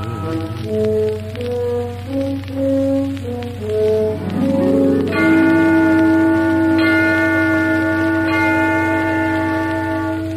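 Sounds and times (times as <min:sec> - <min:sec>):
low steady hum: 0:00.0 - 0:10.3
church tower bells ringing a short stepping melody: 0:04.1 - 0:10.2
heavier church bell strikes with long layered ringing: 0:04.2 - 0:07.6.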